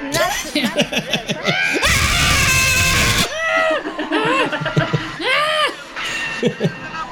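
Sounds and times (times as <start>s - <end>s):
people laughing: 0.1s - 1.9s, 3.4s - 6.9s
small child screaming on an amusement ride: 1.7s - 3.3s
rushing noise: 1.9s - 3.3s.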